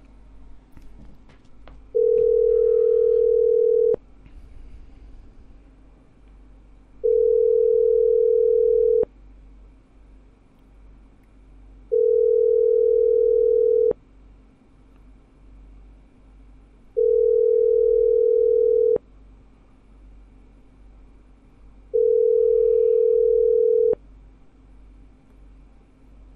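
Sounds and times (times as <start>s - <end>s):
constant low hum: 0.0s - 26.3s
telephone ringback tone while a number is being called: 2.0s - 4.0s, 7.0s - 9.1s, 11.9s - 14.0s, 17.0s - 19.0s, 21.9s - 24.0s.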